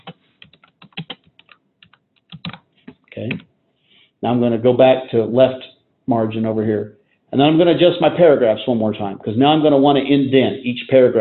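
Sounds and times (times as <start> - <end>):
typing on a computer keyboard: 0.0 - 3.4
speech: 3.2 - 3.5, 4.2 - 11.2.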